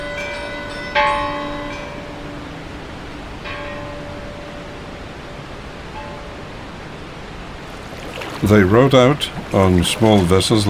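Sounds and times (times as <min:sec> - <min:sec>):
church bells ringing: 0:00.0 - 0:02.6, 0:03.4 - 0:05.0, 0:06.0 - 0:06.4
speech: 0:08.4 - 0:10.6.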